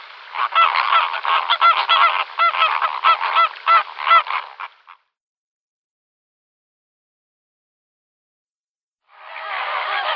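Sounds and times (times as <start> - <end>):
Greater flamingo honking calls: 0.3 - 5.0, 9.3 - 10.1.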